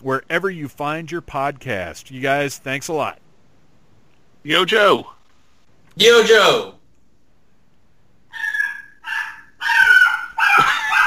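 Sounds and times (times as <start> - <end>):
speech: 0.0 - 3.2, 4.4 - 5.2, 6.0 - 6.8
dog barking: 8.3 - 11.0.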